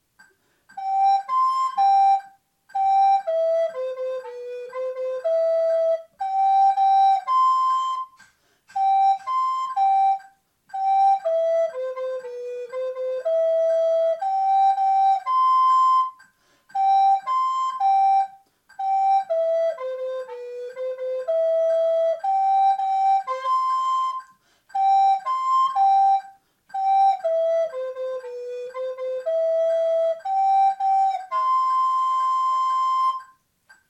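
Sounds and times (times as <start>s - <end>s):
flute playing a scale: 0.7s - 33.8s.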